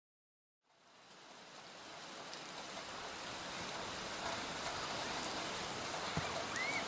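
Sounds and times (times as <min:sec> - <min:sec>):
steady rain falling: 0:00.6 - 0:06.8
sharper drips and patters of rain: 0:02.0 - 0:06.8.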